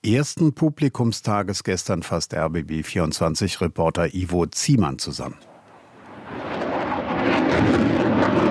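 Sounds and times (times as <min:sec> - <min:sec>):
speech: 0:00.0 - 0:05.5
fighter jet roaring overhead at an airshow: 0:05.4 - 0:08.4.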